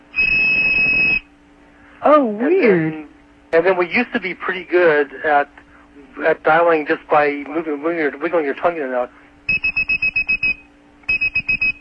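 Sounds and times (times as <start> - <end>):
toy whistle with one hole covered playing a 2600 Hz tone: 0.1 - 1.3, 9.5 - 11.7
speech: 2.0 - 5.6, 6.2 - 9.7.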